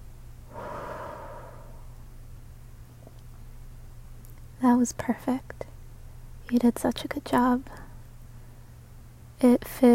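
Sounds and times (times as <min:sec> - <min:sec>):
steady low hum: 0:00.3 - 0:03.2
deep breath during a guided breathing exercise: 0:00.5 - 0:02.0
speech: 0:04.6 - 0:05.7, 0:06.5 - 0:07.8, 0:09.4 - 0:09.9.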